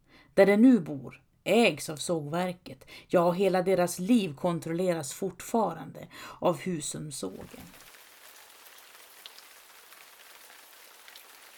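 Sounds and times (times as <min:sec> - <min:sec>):
speech: 0:00.4 - 0:07.9
heavy rain pouring down: 0:07.6 - 0:11.5
sharp drips: 0:07.7 - 0:11.5.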